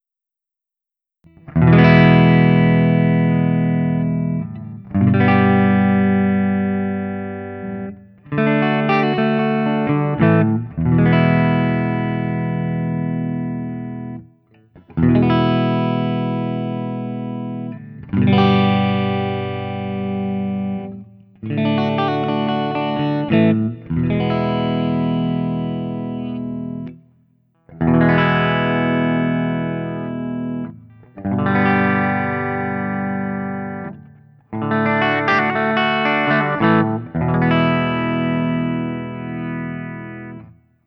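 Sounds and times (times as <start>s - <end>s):
Guild Burnside Crossbow ODS100 electric guitar playing clean open chords: 1.3s - 27.1s, 27.7s - 40.8s.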